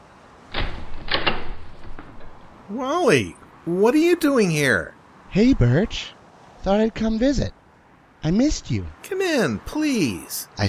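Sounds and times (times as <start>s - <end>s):
door latch and handle rattling: 0.5s - 2.6s
door opening: 0.5s - 2.6s
speech: 2.7s - 7.6s, 8.2s - 10.6s.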